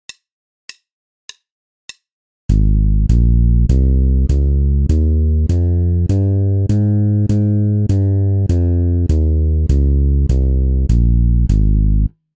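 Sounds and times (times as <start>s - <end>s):
bass playing an A-flat major scale exercise: 2.5s - 12.1s.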